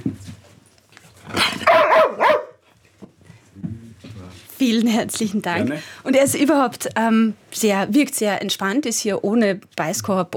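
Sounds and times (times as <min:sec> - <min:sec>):
speech: 0:00.0 - 0:00.3, 0:04.6 - 0:10.3
service dog barking on command: 0:01.4 - 0:02.6.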